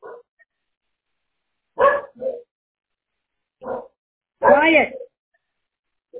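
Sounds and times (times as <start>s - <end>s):
dog barking: 0.0s - 0.3s, 1.8s - 2.5s, 3.6s - 5.1s
speech: 4.7s - 5.0s.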